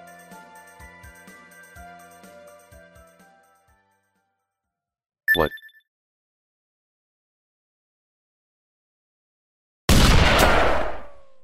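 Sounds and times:
speech: 5.4s - 5.6s
loud booming blast of gunfire: 9.9s - 11.4s.

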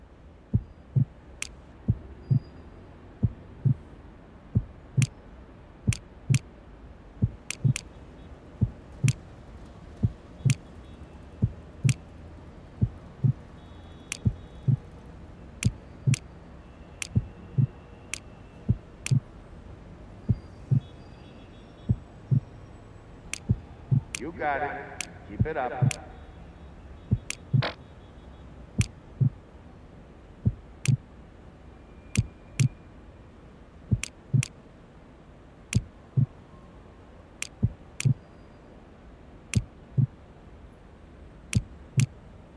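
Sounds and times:
steady rhythmic heartbeat thumping: 0.5s - 1.2s, 1.9s - 2.5s, 3.2s - 3.8s, 4.5s - 5.1s, 5.9s - 6.4s, 7.2s - 7.8s, 8.6s - 9.2s, 10.0s - 10.6s, 11.4s - 12.0s, 12.8s - 13.5s, 14.1s - 14.9s, 15.6s - 16.2s, 17.0s - 17.8s, 18.7s - 19.3s, 20.3s - 20.9s, 21.9s - 22.5s, 23.4s - 24.3s, 25.4s - 26.0s, 27.1s - 27.8s, 28.8s - 29.4s, 30.4s - 31.0s, 33.9s - 34.5s, 36.2s - 36.4s, 37.4s - 38.2s, 39.6s - 40.1s
sharp ticking clicks: 0.5s - 2.5s, 3.2s - 3.8s, 4.6s - 5.2s, 5.9s - 6.5s, 7.2s - 8.0s, 8.6s - 15.0s, 15.6s - 16.4s, 17.0s - 19.3s, 20.3s - 21.0s, 23.2s - 26.1s, 27.0s - 27.8s, 28.8s - 29.4s, 30.5s - 31.0s, 32.1s - 32.8s, 33.9s - 34.6s, 37.4s - 38.2s, 41.5s - 42.2s
speech: 24.4s - 24.9s, 25.5s - 26.0s.

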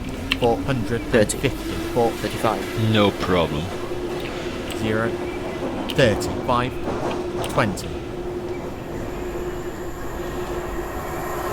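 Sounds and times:
voices: 0.0s - 9.1s
constant hum: 0.0s - 11.5s
rail rumble: 0.0s - 11.5s
train passing on rails: 0.0s - 11.5s
speech: 0.4s - 3.8s, 4.8s - 8.0s.

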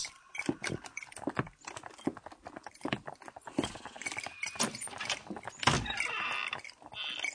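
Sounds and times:
horse hooves clip-clopping: 0.0s - 7.3s.

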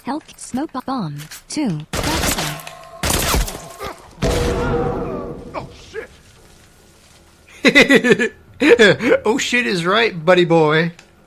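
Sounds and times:
speech: 0.0s - 2.4s, 7.6s - 11.0s
gunfire in a video game: 1.9s - 5.5s.

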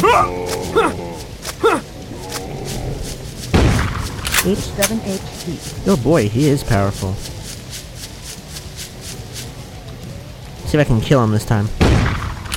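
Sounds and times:
speech: 0.2s - 0.9s, 4.5s - 7.4s, 10.7s - 11.8s
shotgun blasts in a video game: 3.5s - 5.0s, 11.8s - 12.5s.

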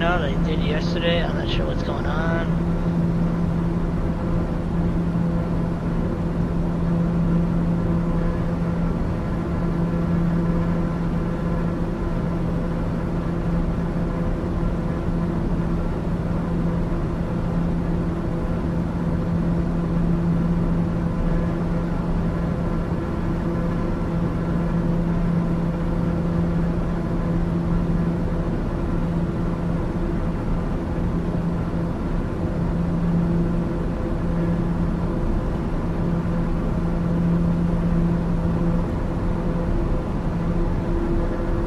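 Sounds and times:
speech: 0.0s - 2.7s
aircraft engine drone with a low humming tone: 0.0s - 41.6s.

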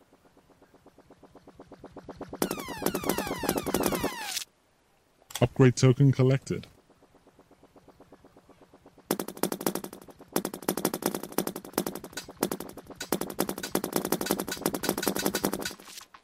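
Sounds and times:
rapid gunfire from shooting in a Space Invaders-style video game: 2.4s - 4.4s, 9.1s - 16.0s
speech: 5.4s - 6.7s.

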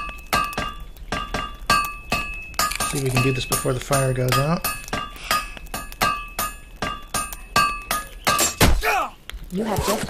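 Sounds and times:
hammer forging bent metal into a shield: 0.0s - 8.8s
speech: 2.9s - 4.8s, 9.5s - 10.0s.

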